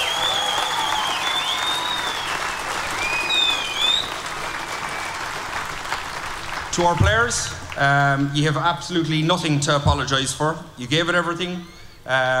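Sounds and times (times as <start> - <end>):
sharp whistles from a crowd: 0.0 - 5.4
large crowd applauding: 0.0 - 8.4
speech: 6.8 - 12.3.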